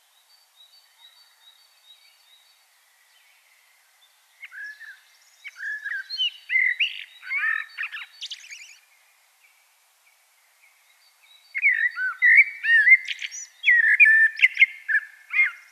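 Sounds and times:
Common blackbird Turdus merula singing fluty whistles and scratchy twitters: 0:04.4 - 0:08.8, 0:11.5 - 0:15.6.

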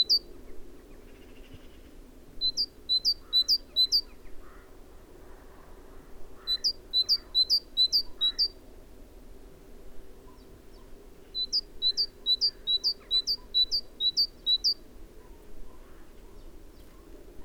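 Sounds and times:
Parus major great tit song: 0:00.0 - 0:00.2, 0:02.4 - 0:04.1, 0:06.4 - 0:08.5, 0:11.4 - 0:14.8
low background hum: 0:00.0 - 0:17.4.

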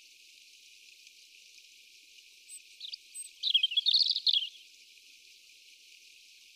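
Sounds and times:
European robin Erithacus rubecula song: 0:02.5 - 0:04.6.

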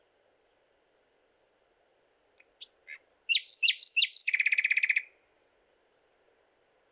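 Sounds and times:
common nightingale song, Luscinia megarhynchos: 0:02.4 - 0:05.1.

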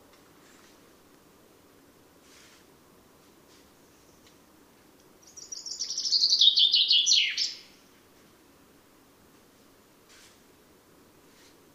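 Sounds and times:
common chaffinch Fringilla coelebs song: 0:05.0 - 0:08.0.

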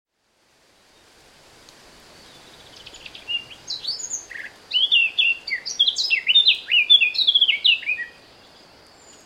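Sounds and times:
light hiss: 0:00.2 - 0:09.2
Eurasian blackcap Sylvia atricapilla song: 0:02.2 - 0:09.2.

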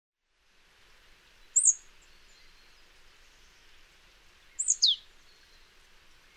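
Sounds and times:
faint background hiss: 0:00.2 - 0:06.3
marsh tit Poecile palustris calling: 0:01.6 - 0:01.8, 0:04.6 - 0:05.1.

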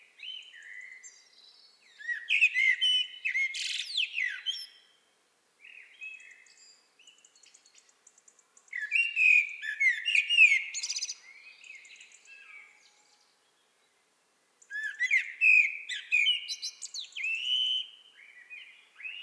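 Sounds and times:
common blackbird singing: 0:00.2 - 0:04.8, 0:08.7 - 0:13.2, 0:14.7 - 0:19.2.

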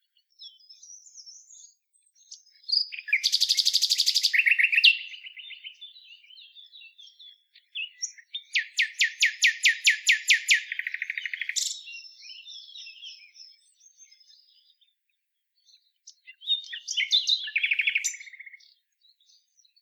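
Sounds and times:
Common nightingale Luscinia megarhynchos song with buzzy trill and rattling series: 0:00.0 - 0:19.8.

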